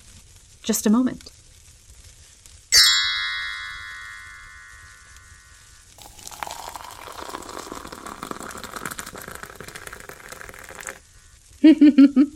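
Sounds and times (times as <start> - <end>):
speech: 0.6 - 1.4, 11.7 - 12.3
bright chime: 2.8 - 7.5
tea pouring from a kettle into a cup: 6.0 - 11.1.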